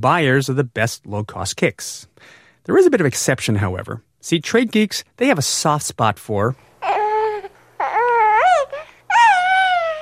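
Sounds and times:
speech: 0.0s - 6.7s
baby crying: 6.8s - 10.0s.

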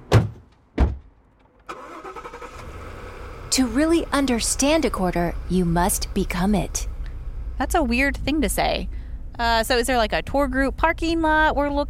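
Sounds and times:
heavy thumps: 0.0s - 1.4s
armored truck engine starting and idling: 1.3s - 11.8s
speech: 3.5s - 6.9s, 7.6s - 11.8s.

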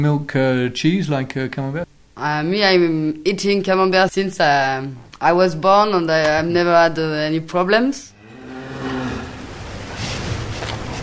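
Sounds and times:
speech: 0.0s - 8.1s
dairy cow mooing on a farm in Normandy France: 8.1s - 9.8s
breezy noise: 8.1s - 11.0s
steady outdoor rumble: 8.1s - 11.0s.

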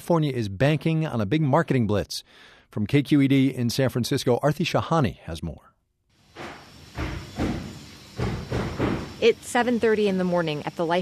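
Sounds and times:
speech: 0.1s - 5.7s, 9.2s - 11.0s
construction crew banging on clinic walls: 6.3s - 9.2s.

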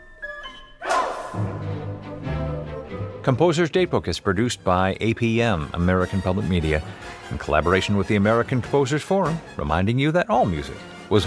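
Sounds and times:
orchestral music with low brass-heavy chords: 0.0s - 11.2s
orchestra members shouting a dog's name: 0.8s - 1.6s
speech: 3.2s - 11.2s.

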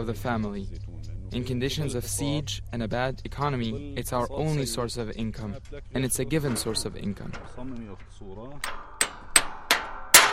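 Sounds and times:
speech: 0.0s - 8.8s
hammer striking a metal tractor part: 6.0s - 10.3s.

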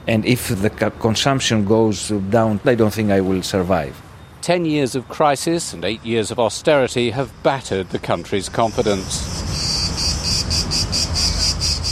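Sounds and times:
speech: 0.1s - 9.4s
cicadas singing in a buzzing chorus: 4.2s - 11.9s.

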